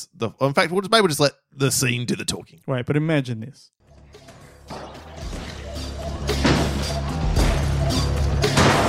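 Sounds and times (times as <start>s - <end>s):
speech: 0.0s - 4.9s
crashes and heavy thuds of an arcade being smashed up: 6.3s - 8.8s.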